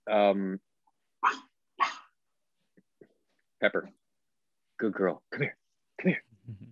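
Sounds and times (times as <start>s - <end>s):
speech: 0.1s - 1.4s, 3.6s - 4.0s, 4.8s - 6.7s
dog barking: 1.2s - 2.1s.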